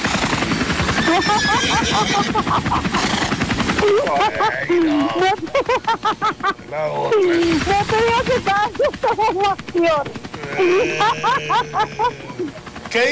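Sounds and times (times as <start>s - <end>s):
helicopter rotor thumping: 0.0s - 13.1s
laughter: 1.1s - 3.1s, 3.8s - 9.6s, 10.4s - 12.6s
speech: 1.2s - 13.1s.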